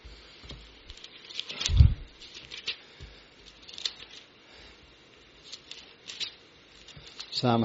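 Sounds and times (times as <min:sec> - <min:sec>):
pages of a Bible being turned: 0:00.4 - 0:04.3, 0:05.4 - 0:07.5.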